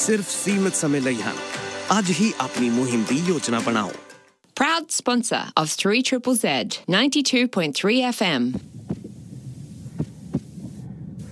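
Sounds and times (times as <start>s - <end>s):
speech: 0.0s - 8.7s
heartbeat of a bus driver after being yelled at: 8.4s - 11.3s
steady low hum: 8.6s - 11.3s.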